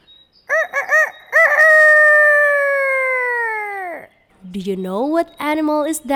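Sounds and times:
rooster crowing: 0.5 - 4.1
speech: 4.6 - 6.1.

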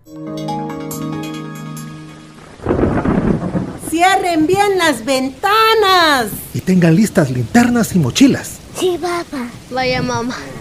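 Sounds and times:
sustained musical chord: 0.0 - 3.2
heavy rushing rain: 1.9 - 10.5
loud burst of thunder: 2.4 - 5.1
speech: 4.0 - 10.5.

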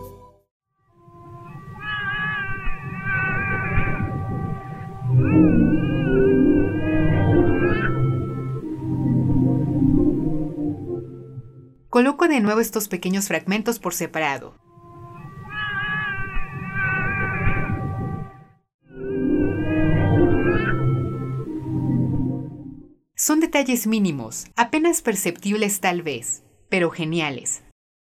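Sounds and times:
baby crying: 1.2 - 8.6, 14.8 - 18.0, 20.2 - 21.2
orchestral film music with sustained low strings: 3.6 - 11.8, 18.9 - 22.9
speech: 12.0 - 14.7, 23.2 - 27.6.

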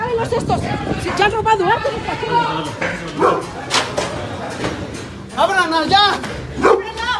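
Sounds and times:
speech: 0.2 - 3.5, 5.5 - 6.7
dog barking in Puebla: 3.2 - 3.5, 6.6 - 7.0.

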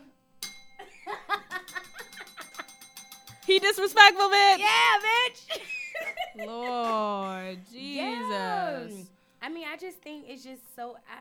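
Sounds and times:
bright bell chime ringing: 0.4 - 5.5
speech: 3.5 - 5.7, 6.4 - 11.1.

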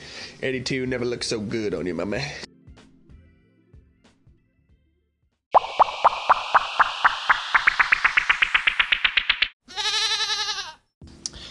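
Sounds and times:
speech: 0.4 - 2.5
hollow plopping clicks: 5.6 - 9.6
loud quavering goat bleat: 9.7 - 10.8.

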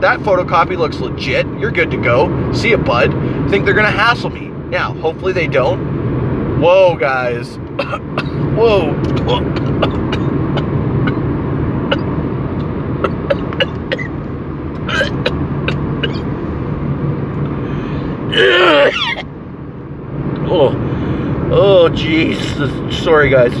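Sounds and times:
speech: 0.0 - 5.9, 6.6 - 10.3, 22.2 - 23.5
steady low rumble inside a moving car: 0.0 - 23.5
short harsh cough: 9.3 - 10.3, 13.0 - 14.1, 14.9 - 15.4, 18.4 - 19.2.

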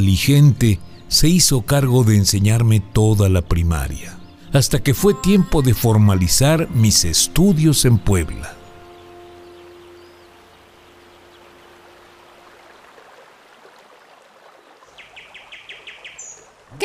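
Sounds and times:
speech: 0.0 - 8.6
birds chirping and singing outdoors: 0.0 - 12.8, 14.8 - 16.5
steady rush of a flowing river: 4.3 - 16.8.

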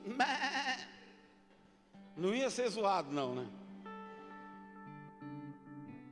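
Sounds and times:
human voices together mimicking a sheep's bleat as a war cry: 0.0 - 1.3
speech: 2.2 - 3.6.

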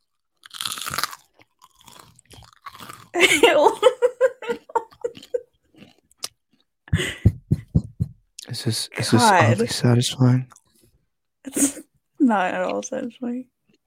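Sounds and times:
loud crunchy chewing close to microphone: 0.0 - 3.2, 4.6 - 6.7
speech: 3.2 - 4.0, 8.6 - 10.6, 12.3 - 13.6
laughter: 3.2 - 5.4, 7.0 - 7.4, 8.5 - 10.4.

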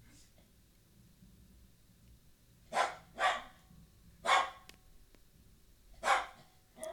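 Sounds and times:
Rottweiler attacking a live chicken barking: 2.7 - 4.7, 6.0 - 6.9.

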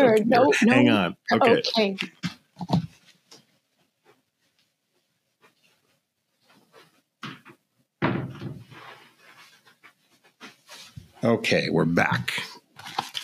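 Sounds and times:
speech: 0.2 - 2.8, 11.2 - 12.5
door being shut with a solid thump: 8.0 - 8.6.

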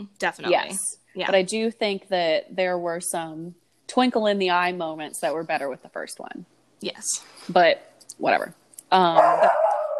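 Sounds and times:
speech: 0.0 - 9.6
dog barking into a howling whine: 9.2 - 9.9.

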